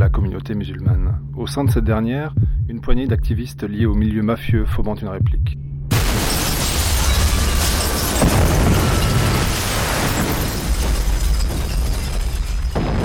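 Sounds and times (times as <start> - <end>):
speech: 0.1 - 5.6
bomb explosions: 5.9 - 13.0
heavy sustained rumbling and crackling debris noise: 5.9 - 13.0.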